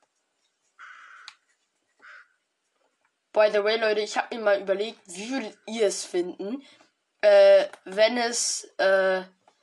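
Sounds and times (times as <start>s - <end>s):
bird harsh raspy calls: 0.8s - 1.3s, 2.0s - 2.4s
speech: 3.4s - 9.4s.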